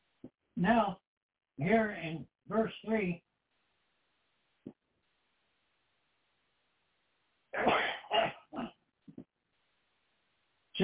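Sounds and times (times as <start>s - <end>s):
speech: 0.6s - 1.0s, 1.6s - 3.3s
person sneezing: 7.6s - 8.8s.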